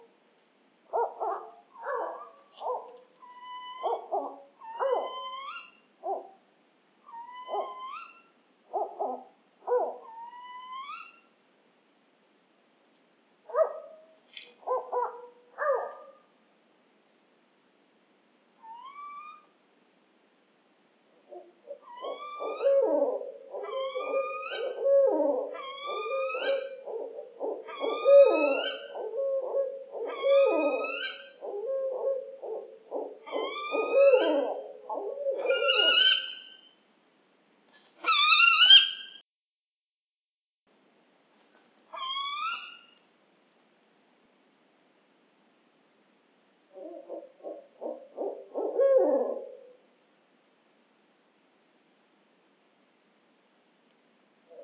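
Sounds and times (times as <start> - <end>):
Northern Spotted Owl calls: 0.9 - 6.4, 7.1 - 11.2, 21.2 - 36.8, 38.0 - 39.2, 41.9 - 43.0, 46.7 - 49.8.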